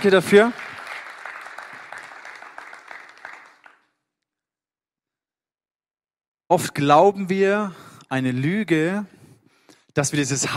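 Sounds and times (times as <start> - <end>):
speech: 0.0 - 0.6, 6.5 - 9.2, 10.0 - 10.5
audience applauding a man's personal testimony: 0.0 - 3.9.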